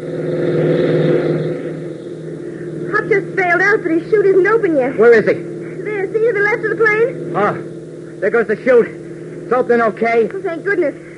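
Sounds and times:
speech: 0:00.0 - 0:00.4, 0:03.8 - 0:05.5, 0:06.6 - 0:11.0
jeep engine rumbling while racing across an airfield: 0:00.0 - 0:11.1.

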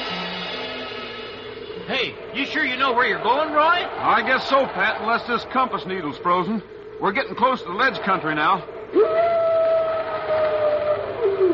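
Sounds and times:
speech: 0:01.9 - 0:09.3
wolf howling: 0:08.9 - 0:11.5.

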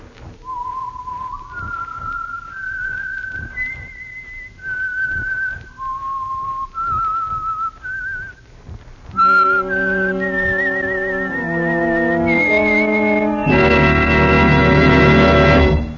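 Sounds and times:
lone whistled theme melody: 0:00.4 - 0:08.4, 0:09.2 - 0:15.8
loud full musical ensemble: 0:11.4 - 0:15.9.

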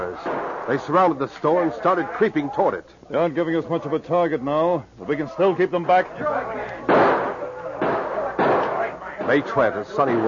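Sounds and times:
sharp gunshots as renegades attack a store under siege: 0:00.0 - 0:01.1, 0:06.8 - 0:10.2
speech: 0:00.0 - 0:07.0, 0:09.3 - 0:10.2.

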